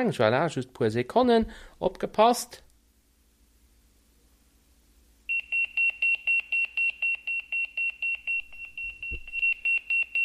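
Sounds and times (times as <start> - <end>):
speech: 0.0 - 2.6
Motorola Pageboy 2 pager alarm beeping: 5.3 - 10.2.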